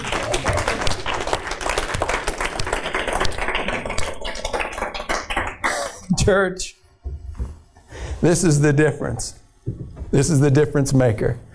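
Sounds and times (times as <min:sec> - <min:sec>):
crowd clapping hands: 0:00.0 - 0:06.1
speech: 0:06.3 - 0:06.8, 0:08.2 - 0:09.4, 0:10.1 - 0:11.5.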